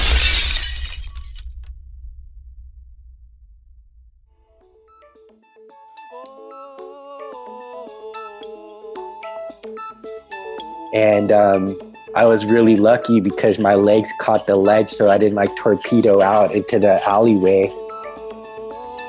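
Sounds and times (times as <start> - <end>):
person crashing through a third-floor apartment glass window: 0.0 - 1.8
low rumble: 0.3 - 4.6
speech: 10.9 - 17.8.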